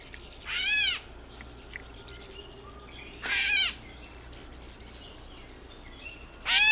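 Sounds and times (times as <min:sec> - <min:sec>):
quiet outdoor noise: 0:00.0 - 0:06.7
gray catbird meow call note: 0:00.4 - 0:04.9, 0:06.3 - 0:06.7.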